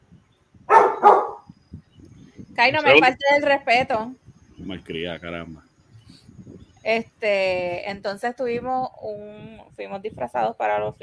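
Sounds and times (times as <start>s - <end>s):
dog barking: 0.7s - 1.5s
speech: 2.6s - 6.2s, 6.8s - 11.0s.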